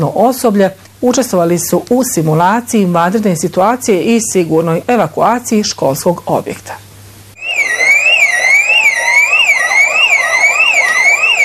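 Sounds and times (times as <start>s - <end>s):
speech: 0.0s - 6.9s
electronic school alarm signalling start of evacuation drill: 7.4s - 11.4s.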